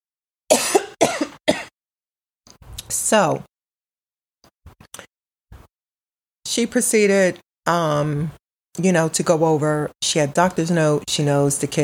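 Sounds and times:
person coughing: 0:00.5 - 0:01.7
speech: 0:02.9 - 0:03.5, 0:06.6 - 0:11.8.

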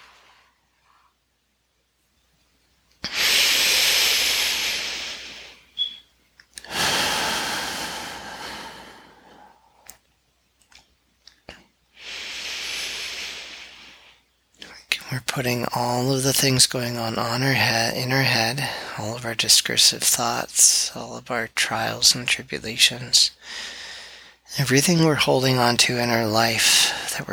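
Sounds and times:
long forceful exhales during a guided breathing meditation: 0:03.1 - 0:05.7, 0:06.6 - 0:09.6, 0:12.0 - 0:14.2
speech: 0:15.2 - 0:23.8, 0:24.5 - 0:27.3.

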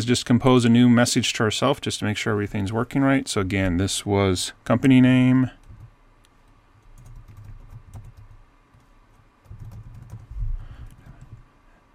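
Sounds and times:
speech: 0:00.0 - 0:05.6
fingers typing on a computer keyboard: 0:06.8 - 0:11.4.

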